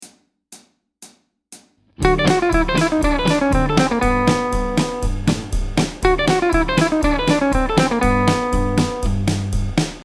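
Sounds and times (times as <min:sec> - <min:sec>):
hybrid picking guitar exercise in western swing style: 0:02.0 - 0:09.8.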